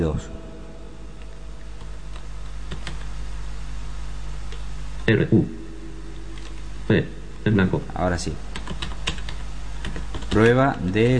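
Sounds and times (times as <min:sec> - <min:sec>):
speech: 0:00.0 - 0:00.4, 0:05.1 - 0:05.6, 0:06.9 - 0:08.5, 0:10.3 - 0:11.1
steady hum and hiss: 0:00.0 - 0:11.1
typing on a computer keyboard: 0:02.1 - 0:03.1, 0:06.3 - 0:06.6, 0:08.5 - 0:11.1.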